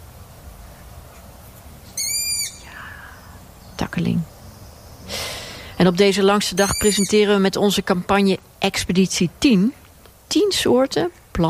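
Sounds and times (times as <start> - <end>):
long-eared owl calling at night from a bare branch by a lake: 1.9 - 3.4, 6.5 - 7.4
speech: 3.8 - 4.3, 5.8 - 11.4.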